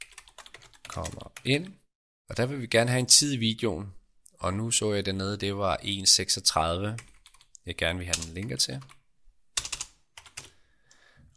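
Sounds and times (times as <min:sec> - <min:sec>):
typing on a computer keyboard: 0:00.0 - 0:01.4, 0:07.0 - 0:07.5, 0:09.6 - 0:10.5
speech: 0:01.0 - 0:09.0.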